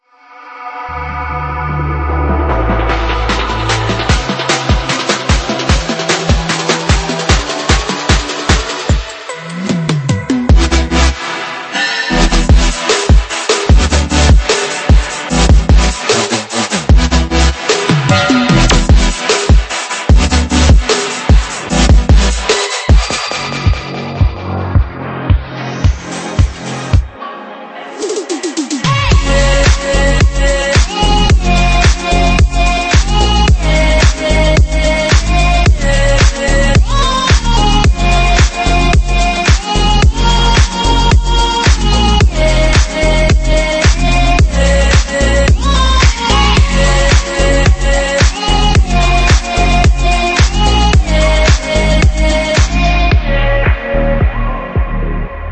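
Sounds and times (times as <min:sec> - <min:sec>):
impulsive future bass music: 0:00.6 - 0:27.2, 0:27.9 - 0:55.5.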